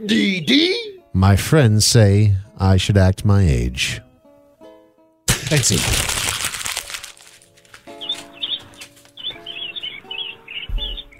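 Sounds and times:
speech: 0.0 - 4.0, 5.5 - 6.2
birds chirping and tweeting: 7.9 - 11.1.

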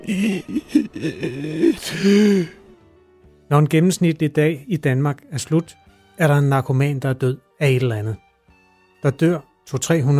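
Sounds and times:
person imitating a ragged gasping breath after being winded: 0.0 - 2.7
speech: 0.1 - 2.6, 3.5 - 8.2, 9.0 - 10.1.

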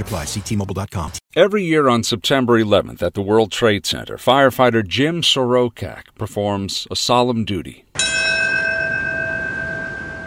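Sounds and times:
speech: 0.0 - 7.8
single deep memorial bell strike: 8.0 - 10.2.

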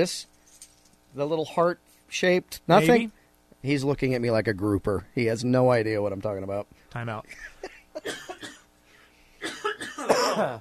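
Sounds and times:
speech: 0.0 - 0.3, 1.2 - 8.4, 10.0 - 10.5
raspy coughing: 7.3 - 8.7, 9.4 - 10.5.

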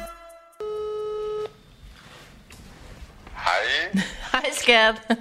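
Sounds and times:
telephone ringing tone on an outgoing call: 0.6 - 1.6
speech: 3.9 - 5.1.

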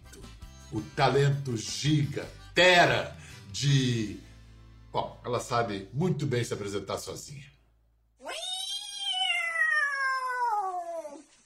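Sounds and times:
speech: 0.7 - 4.3, 4.9 - 7.5
cat meowing: 8.2 - 11.3.

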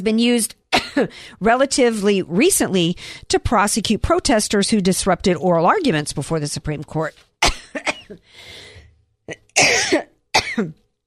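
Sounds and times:
speech: 0.0 - 8.6, 9.3 - 10.8
coughing: 7.4 - 8.3, 9.3 - 10.8.

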